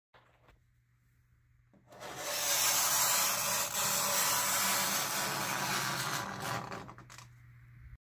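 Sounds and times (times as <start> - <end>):
nails on a wall: 1.8 - 7.3.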